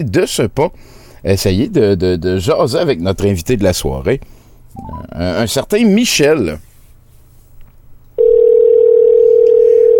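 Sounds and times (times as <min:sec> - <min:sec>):
speech: 0:00.0 - 0:06.7
telephone ringing tone beep on a call line: 0:08.2 - 0:09.9.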